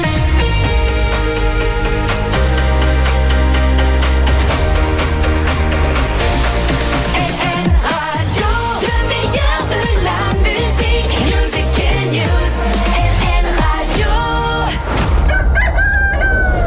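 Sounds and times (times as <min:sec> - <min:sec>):
dense punchy musical backing with heavy bass: 0:00.0 - 0:15.1
rooster crowing: 0:15.2 - 0:16.6.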